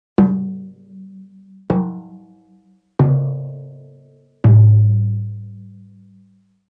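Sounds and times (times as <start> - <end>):
drum set played with mallets: 0.2 - 2.3, 3.0 - 3.8, 4.4 - 5.2.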